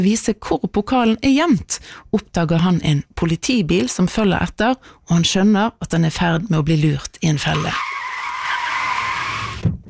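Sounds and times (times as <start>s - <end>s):
speech: 0.0s - 7.9s
tires screeching in a long skid at an intersection: 7.4s - 9.6s.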